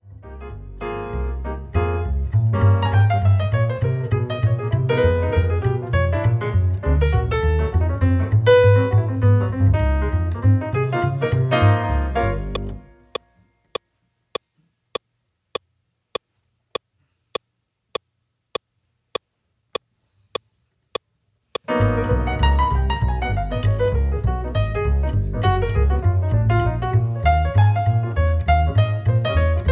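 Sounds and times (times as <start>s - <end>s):
woody piano bass click: 0.0s - 12.9s, 21.6s - 29.7s.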